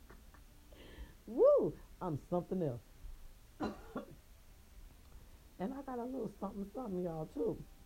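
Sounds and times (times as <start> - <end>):
speech: 1.3 - 2.9, 5.6 - 7.8
person coughing: 3.6 - 4.2.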